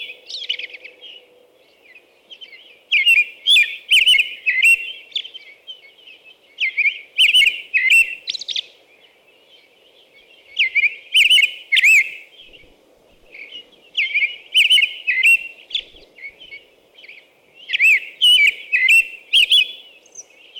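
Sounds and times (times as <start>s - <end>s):
American robin singing whistled carolling phrases: 2.3s - 8.7s, 10.0s - 12.6s, 13.3s - 20.5s.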